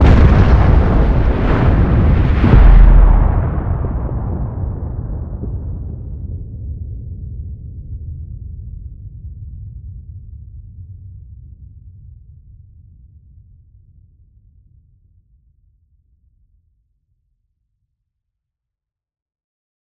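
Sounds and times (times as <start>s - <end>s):
planet explosion from weapons: 0.0s - 7.2s.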